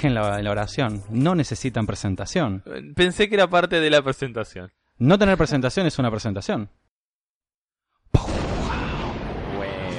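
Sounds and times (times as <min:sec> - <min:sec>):
speech: 0:00.0 - 0:06.8
loud explosion sound effect: 0:08.2 - 0:09.9.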